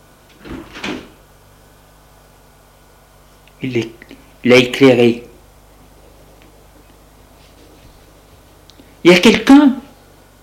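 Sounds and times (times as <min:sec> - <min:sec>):
front door of a house creaking open: 0:00.3 - 0:01.2
soft thud of front door: 0:00.4 - 0:01.2
speech: 0:03.6 - 0:05.2, 0:09.1 - 0:09.8.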